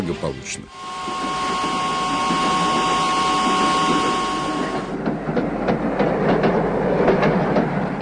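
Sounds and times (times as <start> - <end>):
speech: 0.1 - 2.3
low imperial train rumble: 0.4 - 8.0
faint whine: 0.7 - 5.0
imperial train wheels clattering clickety-clack on tracks: 1.2 - 8.0.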